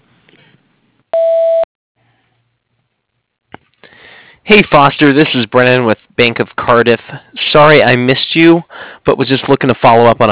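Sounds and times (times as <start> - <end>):
voicemail answering machine beep: 1.2 - 1.6
speech: 4.5 - 10.3.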